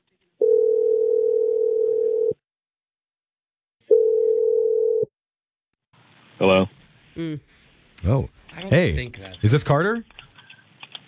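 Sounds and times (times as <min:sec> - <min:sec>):
telephone line tone while a call is placed: 0:00.4 - 0:02.4, 0:03.9 - 0:05.1
speech: 0:06.4 - 0:10.3.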